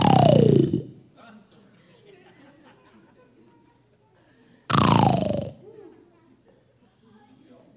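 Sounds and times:
group of voices imitating snoring: 0:00.0 - 0:01.0, 0:04.7 - 0:05.6
laughter: 0:01.3 - 0:04.6.

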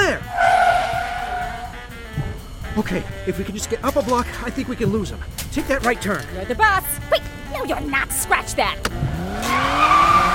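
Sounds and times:
car tires squealing in a handbrake slide through a turn: 0:00.0 - 0:02.0, 0:09.2 - 0:10.3
low car engine rumble: 0:00.0 - 0:05.4
speech: 0:02.8 - 0:10.0.

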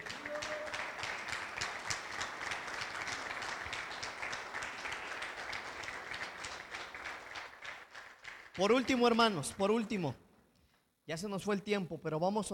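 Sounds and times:
large group applauding: 0:00.0 - 0:10.0
speech: 0:08.6 - 0:10.2, 0:11.1 - 0:12.5.

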